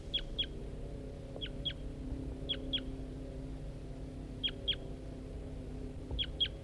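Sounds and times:
wild male bird singing high double notes: 0.0s - 0.6s, 1.3s - 3.1s, 4.3s - 5.1s, 6.0s - 6.6s
low hum: 0.0s - 6.6s.

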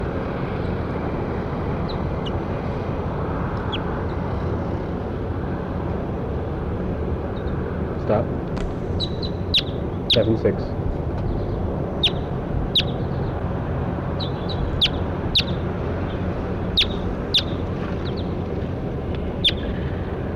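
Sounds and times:
constant low rumble: 0.0s - 20.3s
goldfinch calling while flying over: 8.8s - 10.4s, 11.2s - 13.4s, 14.2s - 18.4s, 19.4s - 19.9s
speech: 10.2s - 10.8s.

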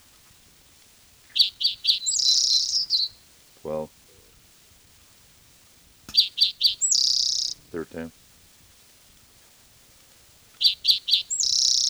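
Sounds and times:
black-throated gray warbler singing: 1.3s - 4.2s, 6.1s - 8.1s, 10.6s - 11.8s
speech: 3.6s - 4.0s, 7.8s - 8.2s.

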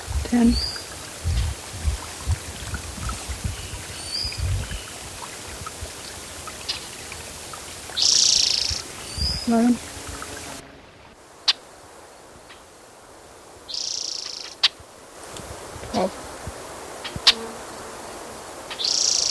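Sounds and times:
blackbirds calling in chirps and buzzy phrases: 0.0s - 10.2s, 13.7s - 14.8s, 18.7s - 19.2s
speech: 0.3s - 0.7s, 9.5s - 9.9s.

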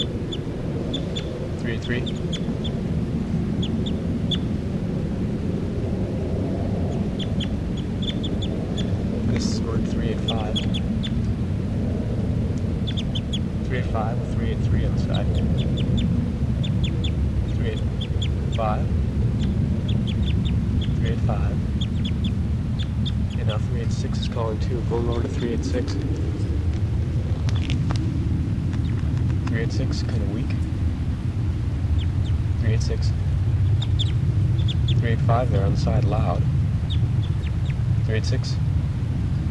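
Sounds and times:
harsh quacking bird calls played from a recording: 0.0s - 2.8s, 6.9s - 11.2s, 12.7s - 23.6s, 32.0s - 38.5s
constant noisy hum: 0.0s - 39.4s
speech: 1.7s - 2.9s, 24.0s - 26.2s, 29.6s - 30.7s, 32.8s - 33.2s, 35.1s - 36.6s, 38.1s - 38.6s.

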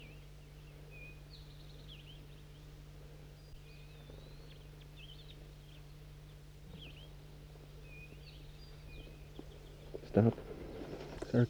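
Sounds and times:
constant low hum: 0.0s - 11.4s
flock of crossbills calling at a net site: 8.0s - 11.4s
speech: 10.2s - 10.5s.

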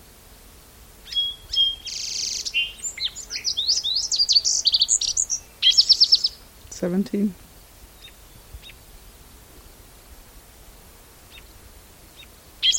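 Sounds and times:
Song Sparrow singing: 1.0s - 6.9s, 7.9s - 8.8s, 12.2s - 12.7s
speech: 6.8s - 7.4s.

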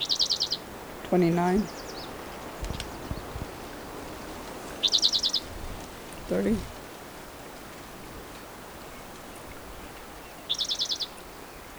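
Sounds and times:
bird calls of rapid high-pitched trilled notes: 0.0s - 6.8s
quiet noise: 0.0s - 11.7s
speech: 1.1s - 1.8s, 6.3s - 6.7s.

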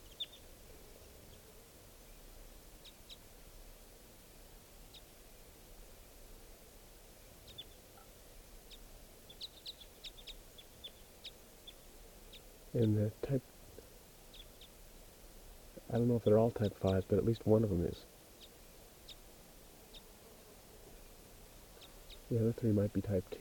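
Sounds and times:
birds giving short high chirping calls: 0.0s - 2.2s, 7.2s - 14.8s, 15.6s - 20.2s, 20.8s - 23.3s
low hiss and rumble: 0.0s - 23.3s
speech: 12.8s - 13.5s, 15.9s - 18.1s, 22.3s - 23.3s.

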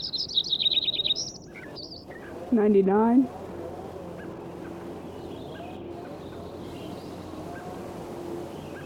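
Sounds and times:
Lincoln's sparrow song: 0.0s - 2.4s, 4.1s - 7.7s
speech: 2.5s - 3.4s.

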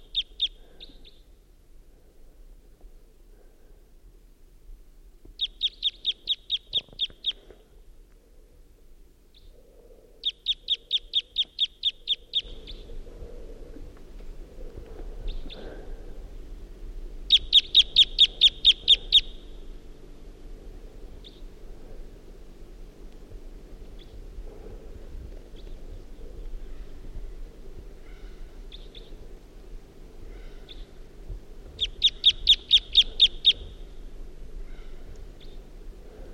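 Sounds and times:
wild bird giving type 2 calls and song: 0.0s - 1.2s, 5.4s - 7.5s, 10.2s - 12.9s, 17.3s - 19.5s, 31.8s - 33.9s
faint low rumble: 0.0s - 36.3s.

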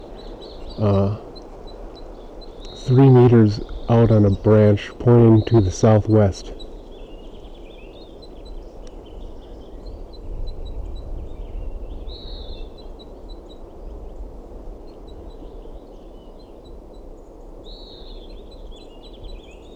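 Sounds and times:
female crossbill begging calls at nest on a branch: 0.0s - 6.8s
speech: 0.8s - 1.2s, 2.9s - 6.6s
steady low rumble: 2.6s - 6.6s.

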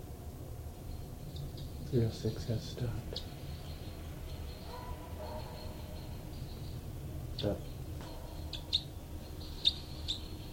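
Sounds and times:
low steady hum: 0.0s - 10.5s
birds calling with high chirps: 0.7s - 10.5s
speech: 1.9s - 3.4s, 7.4s - 7.7s.

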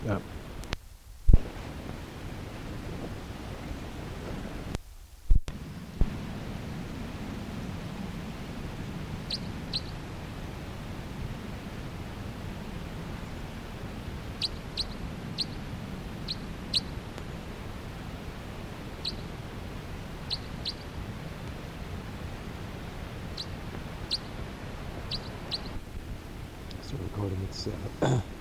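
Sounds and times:
steady low rumble of wind or ambient noise: 0.0s - 28.3s
speech: 0.1s - 0.4s
bird flight calls in ponderosa pine canopy: 9.2s - 10.0s, 14.3s - 17.0s, 18.9s - 19.4s, 20.1s - 21.0s, 23.1s - 25.8s
pair of birds fluttering in pine canopy: 13.3s - 26.1s.

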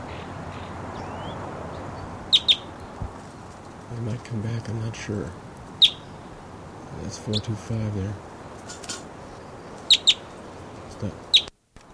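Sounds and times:
wild bird perched in a tree chirping: 0.0s - 3.8s, 5.7s - 7.6s, 8.4s - 11.6s
speech: 4.0s - 6.0s, 7.0s - 8.8s, 11.0s - 11.2s.

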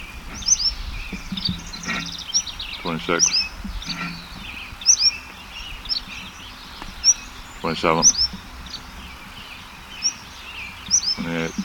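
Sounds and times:
bird singing: 0.0s - 11.6s
speech: 2.9s - 3.4s, 7.6s - 8.3s.

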